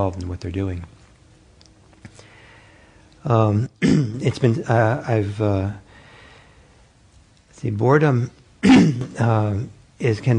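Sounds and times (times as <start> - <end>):
speech: 0.0 - 1.0, 3.2 - 5.8, 7.6 - 10.3
person clearing throat: 3.8 - 4.4, 8.6 - 9.2.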